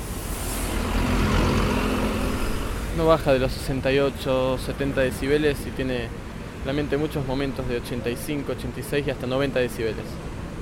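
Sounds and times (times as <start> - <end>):
faint steady engine hum: 0.0 - 8.2
evening road traffic in a city centre: 0.0 - 10.6
speech: 3.0 - 10.3.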